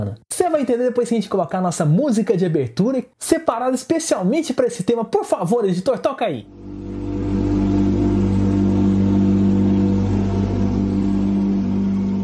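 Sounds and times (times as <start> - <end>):
speech: 0.0 - 6.8
Porsche race car engine revving: 6.5 - 12.2.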